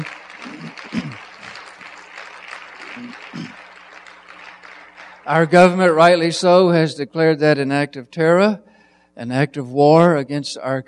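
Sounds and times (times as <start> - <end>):
audience applause: 0.0 - 5.8
speech: 5.3 - 10.8.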